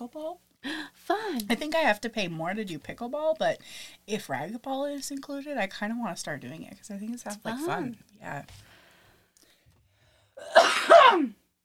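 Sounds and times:
speech: 0.1 - 8.7, 10.4 - 11.4
rasping cough: 10.4 - 11.4.

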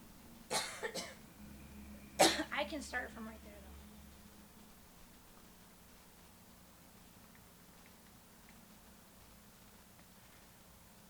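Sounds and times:
dry coughs: 0.5 - 1.2, 2.2 - 2.5
speech: 2.7 - 3.5.

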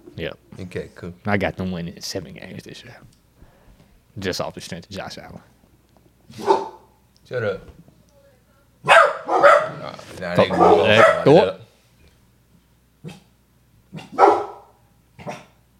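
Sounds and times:
speech: 0.2 - 3.2, 4.2 - 5.6, 6.3 - 6.6, 7.3 - 7.8, 9.9 - 11.6
dogs barking loudly: 6.3 - 7.0, 8.8 - 11.6, 13.9 - 15.6.

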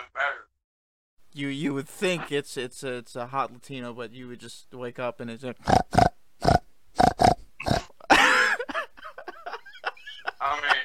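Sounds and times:
speech: 1.4 - 6.1
pig grunting and oinking: 5.6 - 8.1
laughter: 8.1 - 10.8.

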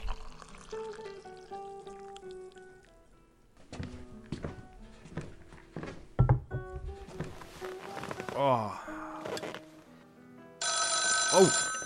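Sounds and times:
tea pouring from a teapot into a cup: 0.0 - 3.0
soft music: 0.0 - 11.8
telephone ringing with bright buzzy tones: 10.6 - 11.8
speech: 11.4 - 11.6.

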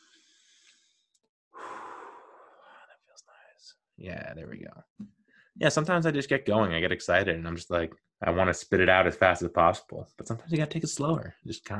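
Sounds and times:
slow deep breath in and out: 0.0 - 1.0, 1.6 - 3.0
speech: 3.6 - 11.7.

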